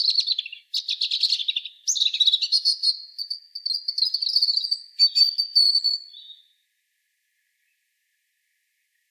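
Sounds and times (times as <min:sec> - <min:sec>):
European robin Erithacus rubecula singing trilled and twittering phrase: 0:00.0 - 0:06.6.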